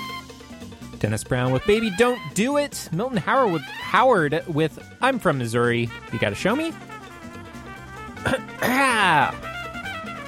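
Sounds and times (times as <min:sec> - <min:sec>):
faint music: 0:00.0 - 0:10.2
speech: 0:01.0 - 0:06.9, 0:08.6 - 0:09.5
person coughing: 0:08.2 - 0:09.3.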